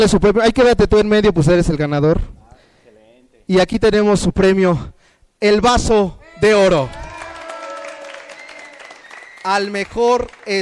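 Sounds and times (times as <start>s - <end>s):
speech: 0.0s - 2.4s, 3.5s - 7.0s, 9.4s - 10.6s
crowd applauding: 6.4s - 10.6s.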